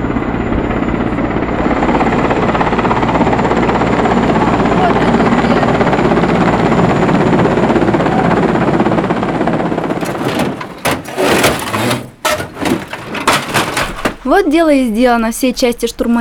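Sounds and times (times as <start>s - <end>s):
helicopter hovering overhead: 0.0s - 10.0s
wood cracking or crunching: 9.8s - 14.3s
speech: 14.3s - 16.2s.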